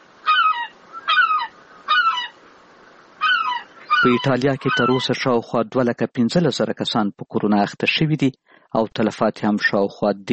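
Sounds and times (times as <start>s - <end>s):
seagulls calling over the streets of Rome: 0.2s - 2.4s, 3.2s - 5.2s
speech: 4.0s - 10.3s.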